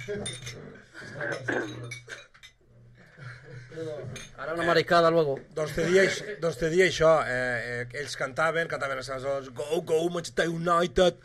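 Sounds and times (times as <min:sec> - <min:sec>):
speech: 0:00.0 - 0:02.3, 0:03.7 - 0:11.2
glasses clinking during a cava toast: 0:00.0 - 0:02.6, 0:04.0 - 0:04.4.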